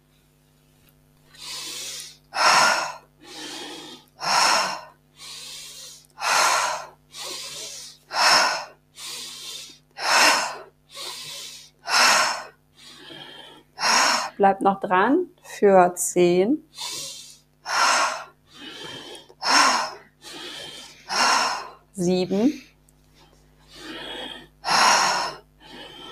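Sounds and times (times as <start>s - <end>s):
intense forceful inhaling during breathwork: 1.3s - 14.4s, 16.7s - 26.0s
speech: 14.4s - 16.7s, 22.0s - 22.7s.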